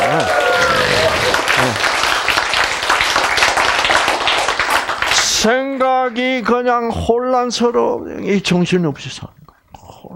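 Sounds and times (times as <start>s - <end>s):
crowd applauding: 0.0s - 5.5s
speech: 5.4s - 9.4s.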